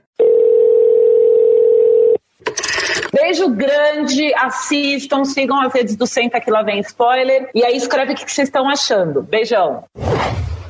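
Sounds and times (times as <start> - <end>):
telephone ringing with a steady electronic tone: 0.2 - 3.2
speech: 3.3 - 10.4.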